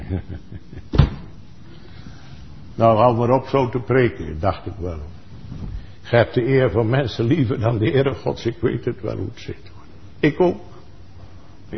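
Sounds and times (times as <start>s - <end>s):
speech: 0.1s - 0.5s, 2.8s - 5.2s, 6.1s - 10.7s
door slamming shut: 0.9s - 1.3s.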